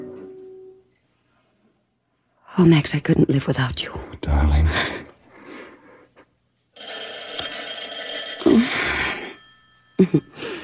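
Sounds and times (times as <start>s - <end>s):
speech: 2.6s - 5.0s
telephone bell ringing: 6.8s - 10.6s.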